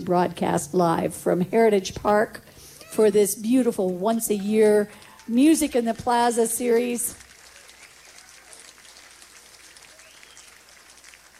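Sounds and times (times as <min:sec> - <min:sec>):
speech: 0:00.0 - 0:07.2
large outdoor crowd applauding at a live blues music event in a park: 0:06.1 - 0:11.3.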